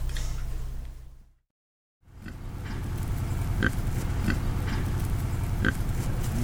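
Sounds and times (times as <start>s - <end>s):
pigs grunting and oinking: 2.1s - 6.4s
sharp pig snorts: 3.4s - 6.4s.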